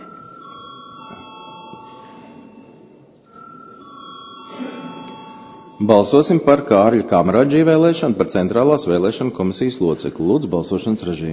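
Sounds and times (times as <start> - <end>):
chamber bell ringing in a parliamentary session: 0.0 - 7.2
speech: 5.8 - 11.3.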